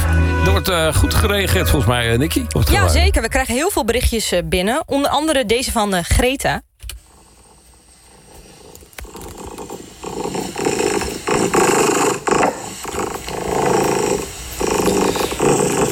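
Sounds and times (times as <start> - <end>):
speech: 0.4 - 6.7
contented pet cat purring: 7.0 - 15.9.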